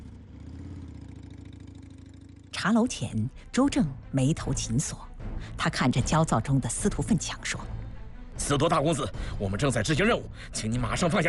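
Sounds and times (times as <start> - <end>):
sidecar motorcycle engine running while driven: 0.0 - 4.0
speech: 2.6 - 7.7, 8.4 - 11.2.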